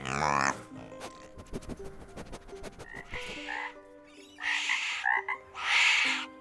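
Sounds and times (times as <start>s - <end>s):
frogs croaking: 2.9s - 6.3s.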